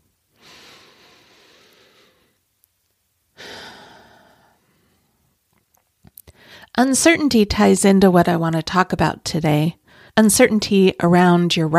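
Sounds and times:
person taking a deep breath in: 0.4s - 2.4s, 3.4s - 5.2s, 6.3s - 6.7s
speech: 6.8s - 11.7s.

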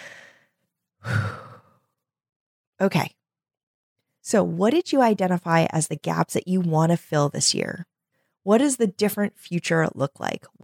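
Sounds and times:
person taking a deep breath: 0.0s - 1.8s
speech: 2.8s - 3.2s, 4.2s - 10.6s.

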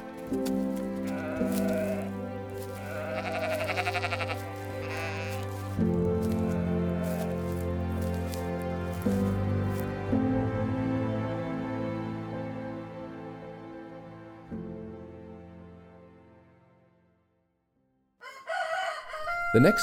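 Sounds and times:
steady sustained drone of music: 0.0s - 16.8s
herd of sheep bleating while being brought home: 0.6s - 8.4s
speech: 19.6s - 19.8s.

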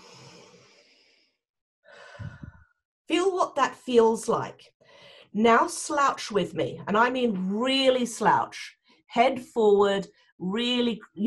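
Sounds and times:
deep breath in while sitting up straight for a posture exercise: 0.0s - 2.6s
speech: 3.1s - 11.2s.

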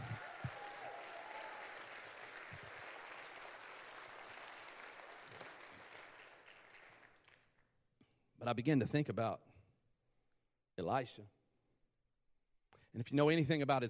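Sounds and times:
large crowd applauding: 0.0s - 7.6s
speech: 8.4s - 9.5s, 10.8s - 11.4s, 13.0s - 13.8s.

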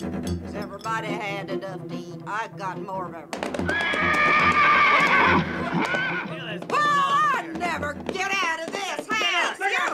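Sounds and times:
speech: 0.9s - 6.0s
horse hoof clops: 3.3s - 9.9s
horse neighing: 3.6s - 6.6s.

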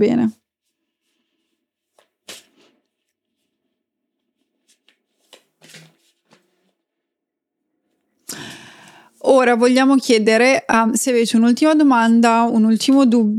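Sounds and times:
speech: 0.0s - 0.4s, 9.2s - 13.3s
oracle cards being shuffled and drawn: 1.0s - 6.6s.

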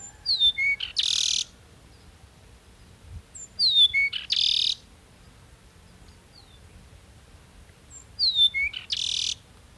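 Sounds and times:
Peruvian Meadowlark song in Ecuador: 0.0s - 9.7s.

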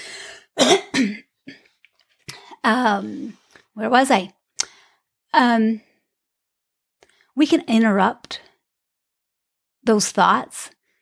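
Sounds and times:
person clearing throat: 0.6s - 1.7s
speech: 2.7s - 4.4s, 5.3s - 5.9s, 7.4s - 8.4s, 9.8s - 10.8s.

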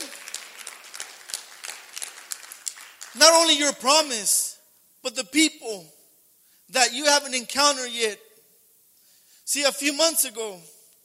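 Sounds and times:
crowd clapping in a dense steady patter: 0.0s - 3.7s
speech: 3.1s - 6.0s, 6.7s - 8.2s, 9.5s - 10.8s.

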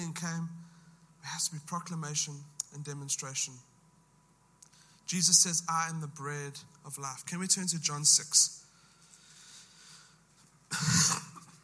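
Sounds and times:
speech: 0.1s - 0.6s, 1.2s - 3.7s, 5.1s - 8.6s, 10.7s - 11.2s
loud harsh cough into a microphone: 10.7s - 11.6s.

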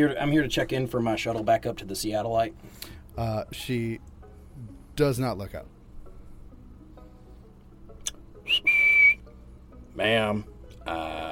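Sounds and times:
speech: 0.0s - 5.8s, 10.0s - 11.3s
person whistling a two-part call to get attention: 8.4s - 9.3s.

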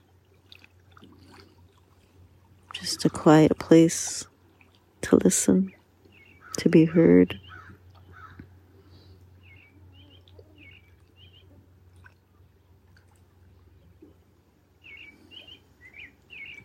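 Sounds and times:
speech: 2.8s - 4.3s, 5.1s - 5.8s, 6.6s - 7.4s
robin singing at dawn: 5.3s - 8.4s, 9.4s - 11.6s, 14.8s - 16.6s.

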